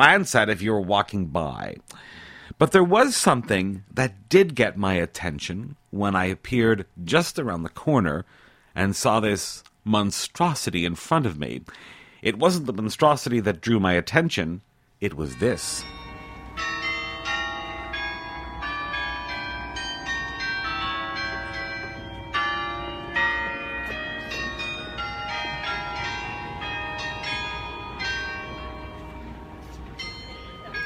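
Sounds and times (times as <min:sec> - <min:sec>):
speech: 0:00.0 - 0:16.0
church tower bells ringing the hour: 0:15.2 - 0:30.8.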